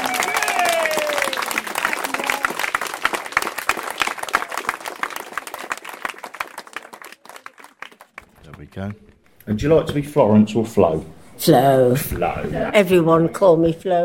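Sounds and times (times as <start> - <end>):
voices cheering for veterans: 0.0 - 7.8
crowd applauding after cheers for veterans: 0.0 - 9.0
speech: 8.8 - 14.0.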